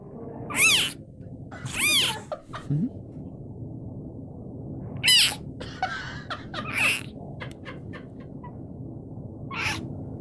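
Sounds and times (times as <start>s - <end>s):
baby clouded leopard cub giving wailing cries at a zoo in Tampa Bay: 0.5s - 1.0s, 1.6s - 2.4s, 5.0s - 5.4s, 6.6s - 7.1s, 9.5s - 9.8s
laughter: 2.1s - 2.8s, 5.6s - 8.5s.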